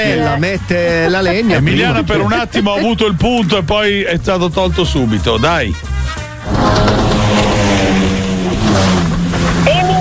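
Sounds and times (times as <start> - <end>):
speech: 0.0 - 9.0
jet ski engine droning while passing by: 6.4 - 9.9.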